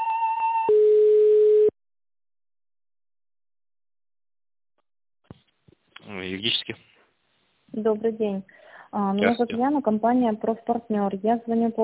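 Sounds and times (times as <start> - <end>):
steady telephone tones while a call is being transferred: 0.1 - 1.7
speech: 7.9 - 11.8.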